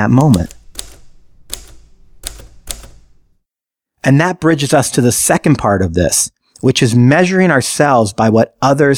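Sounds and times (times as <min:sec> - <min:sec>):
speech: 0:00.0 - 0:00.6, 0:04.0 - 0:08.9
keyboard keystroke clicks: 0:00.2 - 0:03.2.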